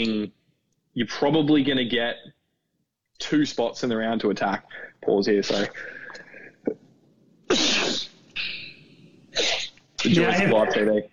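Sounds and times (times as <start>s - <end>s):
speech: 0.0s - 0.4s, 1.0s - 2.4s, 3.2s - 6.0s, 10.0s - 11.1s
loud intense sneeze: 7.5s - 8.2s, 9.3s - 10.5s.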